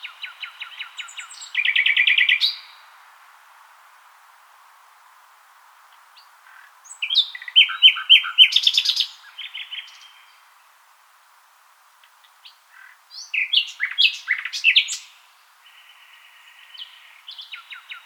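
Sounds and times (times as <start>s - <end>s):
Common nightingale song with rich repeated notes and rattling trills: 0.0s - 3.0s, 5.9s - 10.8s, 12.0s - 18.0s.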